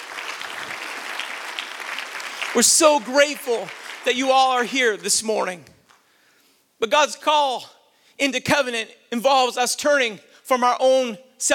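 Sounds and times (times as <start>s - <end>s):
congregation applauding: 0.0s - 6.0s
speech: 2.5s - 5.8s, 6.8s - 11.5s.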